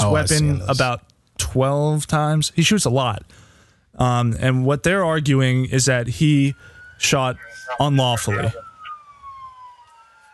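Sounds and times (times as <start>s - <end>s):
speech: 0.0s - 8.7s
police siren wailing: 5.6s - 10.3s
road noise: 6.2s - 9.4s.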